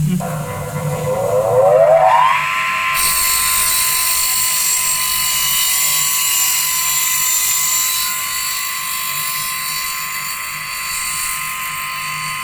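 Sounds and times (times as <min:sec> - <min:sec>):
low motor hum: 0:00.1 - 0:03.1
woodcutting saw blade whine: 0:00.2 - 0:12.4.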